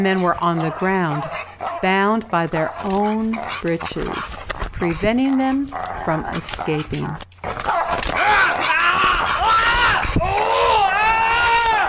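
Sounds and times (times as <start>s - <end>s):
speech: 0.0s - 7.5s
man screaming in pain: 8.2s - 11.8s.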